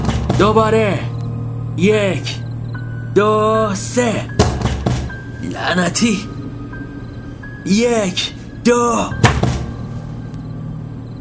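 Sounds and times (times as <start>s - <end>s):
heavy door forced open in an audio drama: 0.0s - 0.9s, 4.4s - 5.3s, 9.2s - 9.9s
low rumble: 0.0s - 11.1s
speech: 0.4s - 1.1s, 1.8s - 2.4s, 3.2s - 4.4s, 5.4s - 6.3s, 7.6s - 9.2s.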